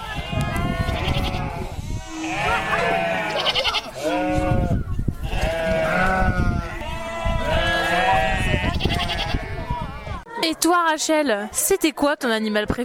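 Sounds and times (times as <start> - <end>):
goats bleating: 0.0 - 10.3
children chattering and calling out: 0.0 - 12.8
speech: 10.6 - 12.8.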